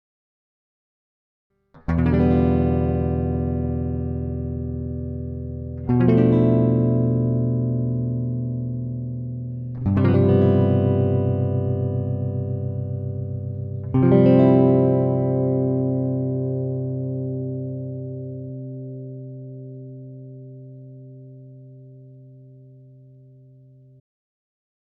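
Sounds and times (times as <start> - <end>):
dry guitar intro: 1.9 - 22.0.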